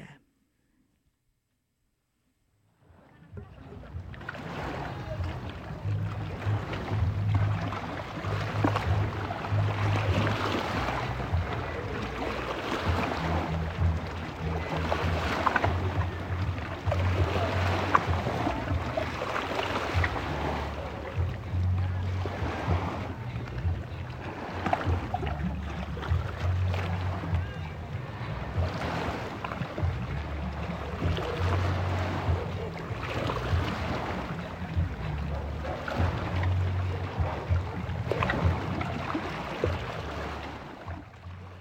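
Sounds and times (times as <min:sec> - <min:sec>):
lake waves breaking against the shore: 0:02.8 - 0:41.5.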